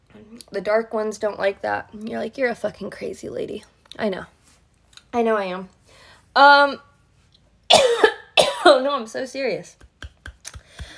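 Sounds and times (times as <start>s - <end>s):
speech: 0.3s - 4.4s, 5.1s - 6.9s, 8.7s - 9.9s
person coughing: 7.7s - 8.8s.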